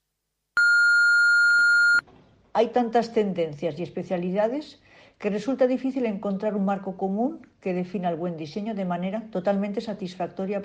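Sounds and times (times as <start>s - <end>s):
faint room noise: 0.0s - 10.6s
long electronic answering machine beep: 0.6s - 2.0s
speech: 2.6s - 10.6s.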